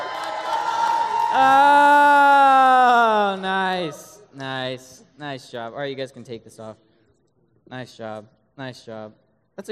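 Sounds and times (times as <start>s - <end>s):
single loud sustained whooping yell: 0.0s - 4.2s
small audience cheering and shouting for a participant on stage: 0.0s - 4.2s
speech: 1.3s - 1.8s, 3.8s - 6.9s, 7.7s - 9.7s.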